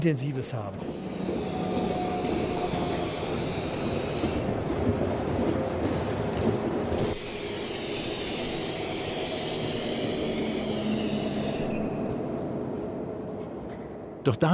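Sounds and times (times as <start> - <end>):
constant loud rumble: 0.0 - 14.5
spray can spraying paint on train windows: 0.8 - 4.4, 6.9 - 11.9.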